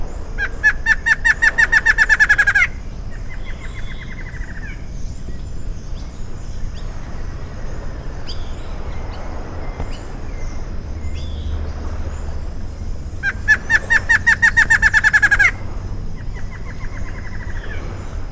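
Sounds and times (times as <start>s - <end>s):
Thamnophilus palliatus calling: 0.3s - 4.9s, 12.9s - 17.7s.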